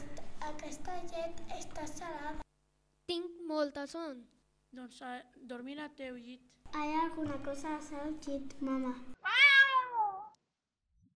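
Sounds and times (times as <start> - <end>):
speech: 0.7 - 2.4, 3.1 - 9.4
cat meowing: 9.2 - 10.4.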